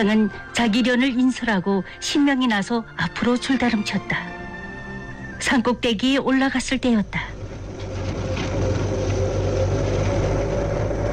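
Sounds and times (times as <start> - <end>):
speech: 0.0 - 4.4, 5.4 - 7.4
convoy of large ten-wheeled cargo trucks roaring along a big road at a mountain foot: 7.4 - 11.1.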